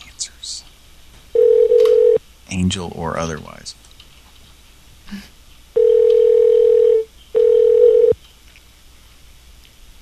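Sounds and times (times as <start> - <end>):
phone-line ringback tone while calling a toll-free number: 1.4 - 2.2, 5.8 - 8.2
speech: 2.6 - 3.8, 5.1 - 5.3.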